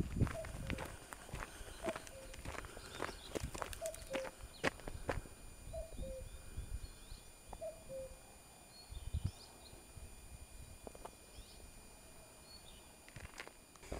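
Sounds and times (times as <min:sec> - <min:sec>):
footsteps crunching on a high path of the Way of St. James: 0:00.0 - 0:05.4, 0:13.1 - 0:13.9
small birds chirping: 0:00.2 - 0:09.9, 0:10.6 - 0:11.7, 0:12.4 - 0:13.0
common cuckoo two-note call in a chestnut forest: 0:00.4 - 0:00.9, 0:01.8 - 0:04.4, 0:05.7 - 0:06.3, 0:07.1 - 0:08.2.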